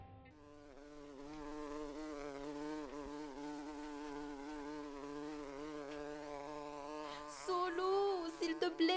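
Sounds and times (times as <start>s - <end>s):
bee buzzing around inside a house: 0.3s - 8.9s.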